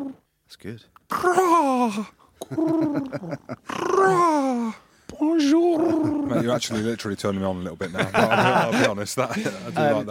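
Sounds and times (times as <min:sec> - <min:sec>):
person imitating pigeon cooing: 0:00.0 - 0:00.2, 0:01.1 - 0:06.4
speech: 0:00.5 - 0:10.0
laughter: 0:02.4 - 0:04.5, 0:05.7 - 0:06.9, 0:07.8 - 0:10.0.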